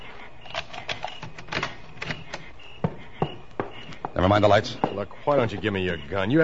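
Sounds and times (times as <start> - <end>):
keys rattling and clicking in a lock: 0.4 - 2.5
speech: 4.2 - 6.4.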